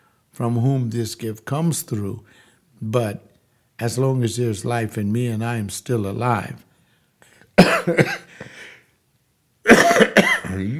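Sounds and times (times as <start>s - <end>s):
speech: 0.4s - 6.7s, 7.6s - 8.5s
person coughing harshly with labored, difficult, rasping coughs: 7.6s - 8.6s, 9.7s - 10.7s.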